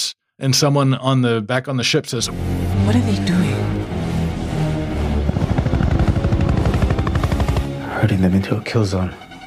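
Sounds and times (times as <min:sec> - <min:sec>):
speech: 0:00.4 - 0:03.5, 0:08.0 - 0:09.3
helicopters roaring in with rapid rotor chop: 0:03.8 - 0:08.3.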